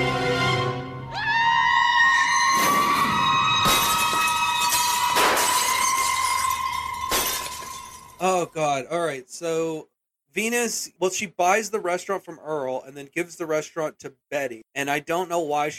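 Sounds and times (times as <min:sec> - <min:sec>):
woman's long piercing high-pitched scream: 0:01.1 - 0:07.9
tinkling glass debris: 0:03.6 - 0:08.5
windows shattering in loud crashing bursts: 0:03.6 - 0:08.5
speech: 0:08.4 - 0:15.7.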